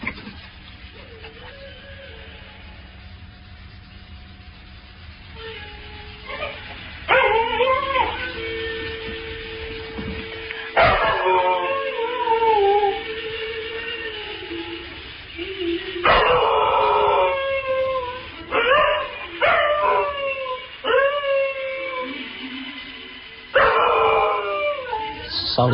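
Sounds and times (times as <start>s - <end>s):
dog howling and yipping: 0.9s - 2.9s, 6.2s - 9.2s, 10.7s - 22.9s, 23.5s - 25.5s.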